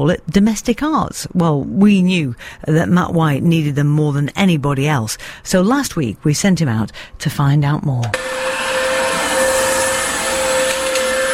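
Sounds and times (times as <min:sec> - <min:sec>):
speech: 0:00.0 - 0:08.8
vacuum cleaner running: 0:08.1 - 0:11.3.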